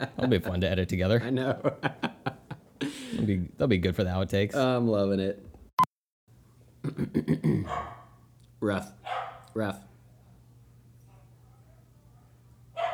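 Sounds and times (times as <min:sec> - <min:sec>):
laughter: 0:00.0 - 0:00.5, 0:01.2 - 0:03.1
speech: 0:00.0 - 0:02.1, 0:03.1 - 0:05.5, 0:06.8 - 0:08.0, 0:08.6 - 0:09.9
person imitating dog barking: 0:06.9 - 0:08.0.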